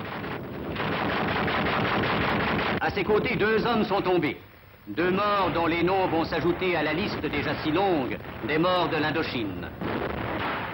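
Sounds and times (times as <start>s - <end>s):
rapid gunfire aimed at a patrol: 0.0s - 2.8s, 6.0s - 10.7s
speech: 2.9s - 9.8s.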